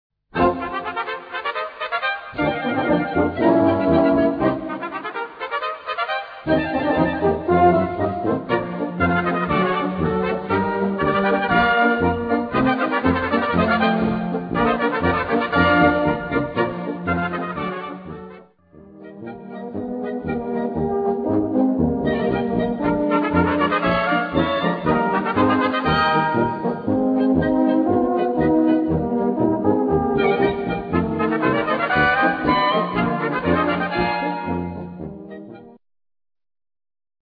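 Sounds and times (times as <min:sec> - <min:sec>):
trumpet: 0:00.4 - 0:35.8.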